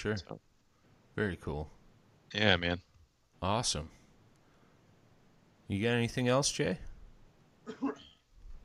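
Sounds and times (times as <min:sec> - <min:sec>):
speech: 0:00.0 - 0:00.6, 0:01.2 - 0:04.0, 0:05.7 - 0:06.9, 0:07.7 - 0:08.0
short cough: 0:07.6 - 0:08.2.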